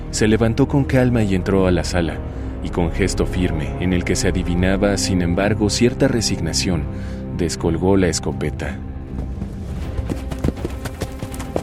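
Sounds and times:
speech: 0.1s - 8.9s
black horse galloping along a narrow path beside a river: 9.0s - 11.6s.

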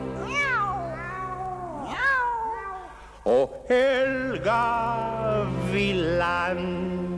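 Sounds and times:
cat meowing: 0.2s - 3.0s
speech: 3.7s - 7.1s.

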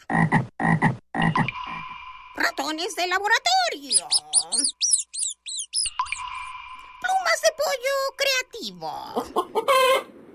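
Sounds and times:
frog croaking with loud raspy double pulses: 0.0s - 1.8s, 3.7s - 6.9s
speech: 0.1s - 0.4s, 2.7s - 4.7s, 7.3s - 10.2s.

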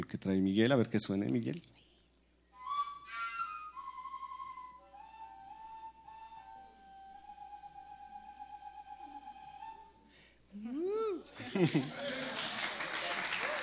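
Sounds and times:
speech: 0.0s - 1.8s, 11.6s - 12.0s
PVC fujara overtone flute adapted from a plastic hose playing sustained tones: 2.5s - 10.1s
laughter: 11.2s - 13.5s.

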